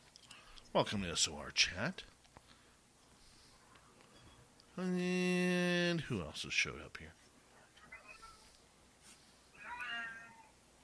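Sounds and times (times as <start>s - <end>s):
quiet room hiss: 0.0s - 10.8s
speech: 0.7s - 2.1s, 4.8s - 7.2s
cat meowing: 9.6s - 10.5s.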